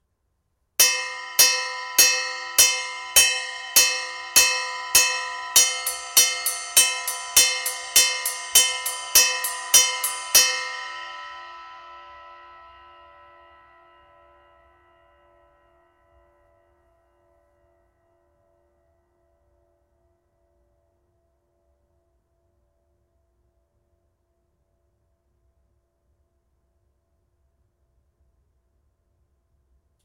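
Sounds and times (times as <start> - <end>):
21in Mega Bell ride cymbal: 0.8 - 13.0.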